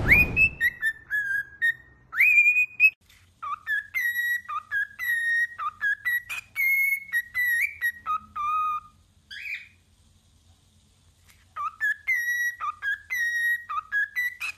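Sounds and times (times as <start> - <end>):
several cockatiels whistling a broken song: 0.1 - 9.7, 11.5 - 14.5.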